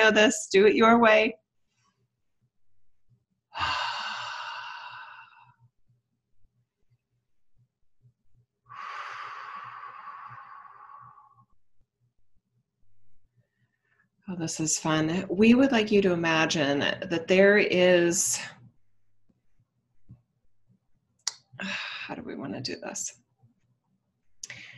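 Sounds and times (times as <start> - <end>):
speech: 0.0 - 1.4, 3.6 - 3.8, 14.3 - 18.6, 21.6 - 23.2
deep breath in through the nose, out through the mouth: 3.6 - 5.6, 8.7 - 11.6, 24.4 - 24.7.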